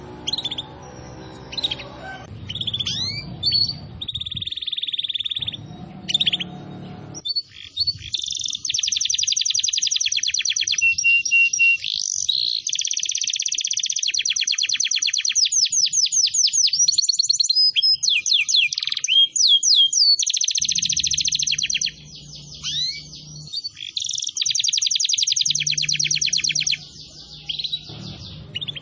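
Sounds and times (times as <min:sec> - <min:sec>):
low hum: 0:00.0 - 0:04.5, 0:05.4 - 0:07.2, 0:27.9 - 0:28.7
canary song used as a lure and master song for training: 0:00.0 - 0:28.7.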